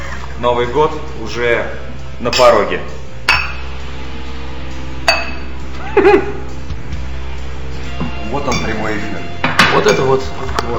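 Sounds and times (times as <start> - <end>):
speech: 0.4 - 3.0, 6.0 - 6.4, 8.3 - 10.7
glasses clinking in a New Year's toast: 2.3 - 3.7, 5.0 - 5.5, 8.4 - 10.1.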